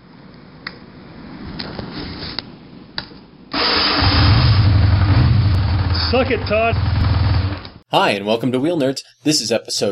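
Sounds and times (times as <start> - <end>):
engine cranking, starting and idling: 3.5 - 5.9
speech: 6.1 - 7.0, 7.9 - 9.9.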